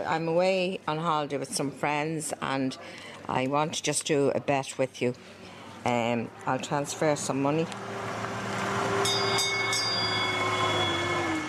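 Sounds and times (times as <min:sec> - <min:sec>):
speech: 0:00.0 - 0:08.0
small tourist train engine drone: 0:06.3 - 0:11.4
small tourist train wheels squealing on rails: 0:07.8 - 0:11.4.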